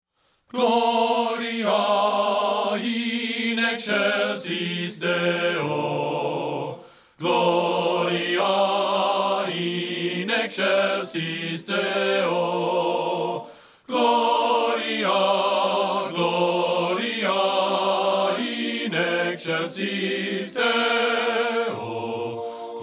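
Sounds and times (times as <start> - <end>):
men singing bass part of a choral piece: 0.6 - 22.8.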